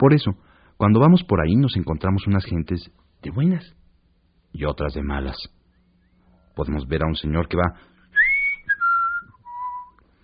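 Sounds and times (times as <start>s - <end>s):
speech: 0.0s - 3.8s, 4.5s - 5.6s, 6.6s - 7.9s
man cheerfully whistling a short tune: 8.1s - 10.0s.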